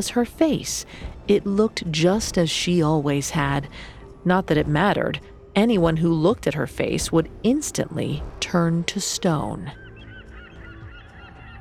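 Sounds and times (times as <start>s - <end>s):
speech: 0.0s - 9.8s
gulls crying in a dense overlapping chorus: 5.8s - 11.5s.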